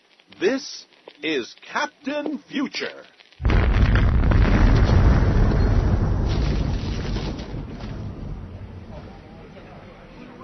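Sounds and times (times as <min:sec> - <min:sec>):
speech: 0:00.4 - 0:03.5
thermonuclear blast explosion: 0:03.4 - 0:09.3.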